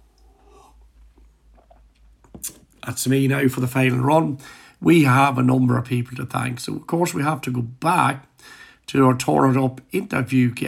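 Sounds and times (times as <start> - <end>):
sipping a drink: 0.1 - 2.8
speech: 2.4 - 10.6.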